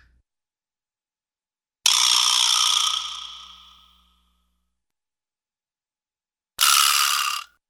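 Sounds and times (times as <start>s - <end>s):
rattly wooden ratchet-like spin, cartoon: 1.9s - 3.7s, 6.6s - 7.5s.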